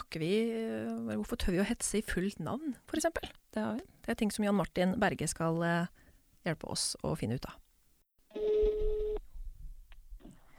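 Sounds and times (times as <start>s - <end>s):
speech: 0.1s - 7.6s
telephone ringing: 8.3s - 9.2s.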